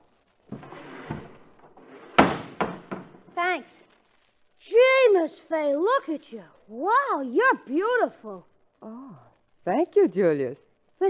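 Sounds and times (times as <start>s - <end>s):
back door unhooked and opened: 0.5s - 3.4s
speech: 3.6s - 3.9s, 4.6s - 11.0s.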